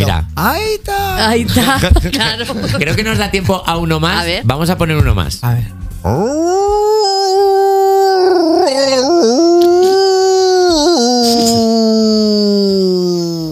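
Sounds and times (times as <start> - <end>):
speech: 0.4 - 6.9
man imitating a long loud dog or wolf howl: 6.1 - 13.4.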